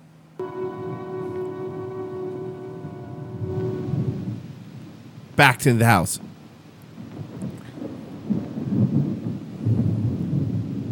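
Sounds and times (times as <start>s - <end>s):
deep rolling thunder during a thunderstorm without rain: 0.4s - 5.0s, 7.0s - 10.9s
speech: 5.4s - 6.3s.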